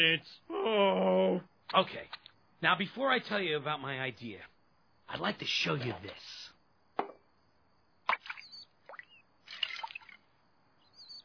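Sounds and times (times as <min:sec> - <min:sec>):
speech: 0:00.0 - 0:04.5, 0:05.1 - 0:07.1
toy bird dipping its beak into water: 0:08.1 - 0:10.2
small squeaky chirps: 0:08.1 - 0:11.2.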